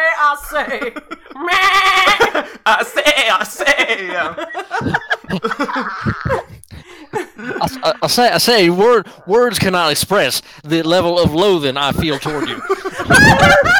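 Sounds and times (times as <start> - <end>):
speech: 0.5 - 1.8, 2.4 - 6.4, 7.6 - 13.7
person chuckling and laughing: 0.8 - 2.5, 4.2 - 8.3, 12.2 - 13.7
person doing a wavering goat-like bleat: 1.4 - 2.2.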